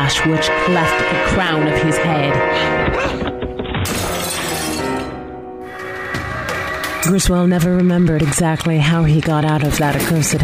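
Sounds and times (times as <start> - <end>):
speech: 0.1 - 4.0, 7.0 - 10.4
window pane smashing: 3.5 - 5.2
glass shards tinkling and scattering: 3.9 - 5.1.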